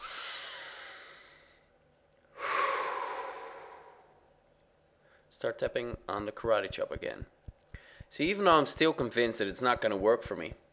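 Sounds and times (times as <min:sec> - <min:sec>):
deep breath during a guided tapping exercise: 0:00.0 - 0:04.3, 0:07.7 - 0:08.1
speech: 0:05.4 - 0:07.4, 0:08.1 - 0:10.6.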